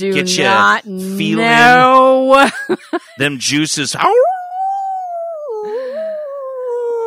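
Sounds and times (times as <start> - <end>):
speech: 0.0 - 4.3
person imitating a dog howling: 0.1 - 2.0, 4.0 - 7.0
laughter: 1.4 - 3.4.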